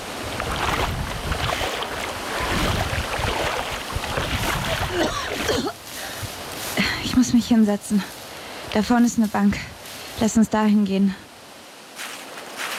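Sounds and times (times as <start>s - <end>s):
water splashing and churning: 0.0s - 5.9s
rough wind noise: 0.0s - 10.5s
speech: 7.5s - 11.2s.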